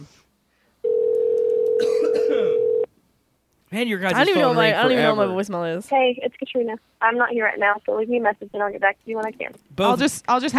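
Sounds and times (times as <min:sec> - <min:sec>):
unanswered outgoing telephone call ringback tone: 0:00.8 - 0:01.8, 0:02.5 - 0:02.9
speech: 0:03.7 - 0:10.5.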